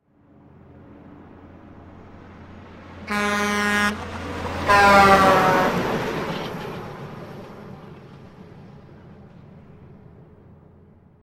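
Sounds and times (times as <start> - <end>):
semi-truck horn with Doppler effect driving by left to right: 3.0 - 6.0.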